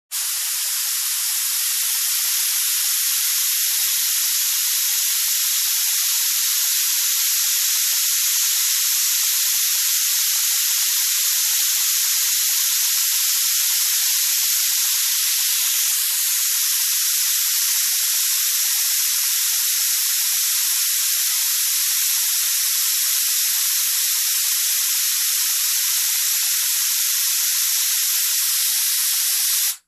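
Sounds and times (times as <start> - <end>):
paint sprayer machine: 0.1 - 21.1, 21.9 - 29.8.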